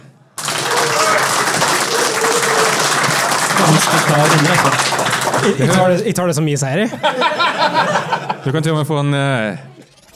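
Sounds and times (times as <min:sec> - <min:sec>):
audience applause: 0:00.4 - 0:06.0
laughter: 0:00.4 - 0:06.1, 0:06.8 - 0:08.6
speech: 0:03.7 - 0:09.7.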